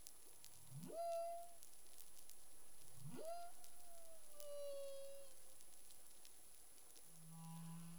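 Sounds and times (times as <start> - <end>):
humpback whale whoops in the Caribbean: 0.7 - 1.7, 3.0 - 5.4.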